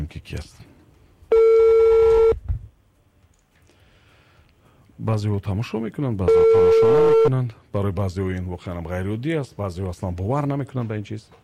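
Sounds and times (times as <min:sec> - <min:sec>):
speech: 0:00.1 - 0:00.7, 0:05.0 - 0:11.4
telephone tone as a call is dialed from a studio: 0:01.3 - 0:02.4, 0:06.3 - 0:07.3.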